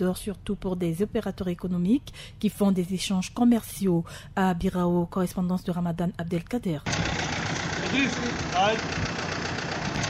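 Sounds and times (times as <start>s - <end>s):
speech: 0.0s - 7.3s, 7.9s - 9.1s
large truck engine idling with a steady rumble: 6.9s - 10.0s.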